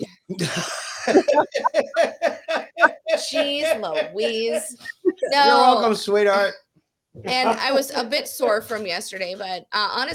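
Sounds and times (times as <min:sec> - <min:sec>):
harsh breathy cough: 0:00.0 - 0:02.1
laughter: 0:00.0 - 0:05.5, 0:07.2 - 0:07.8
speech: 0:00.3 - 0:02.2, 0:03.2 - 0:06.6, 0:07.2 - 0:10.1
short voiced sounds like talking or chuckling: 0:01.2 - 0:02.0, 0:04.8 - 0:05.8.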